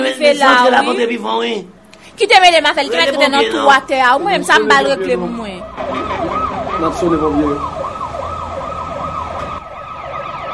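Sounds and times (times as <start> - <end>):
speech: 0.2 - 7.8
fire engine siren wailing as the engine arrives: 4.8 - 10.5.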